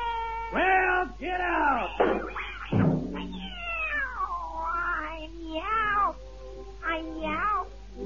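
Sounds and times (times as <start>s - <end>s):
cat meowing in a comic song: 0.0s - 0.6s, 2.2s - 6.2s, 6.8s - 7.7s
speech: 0.5s - 2.4s.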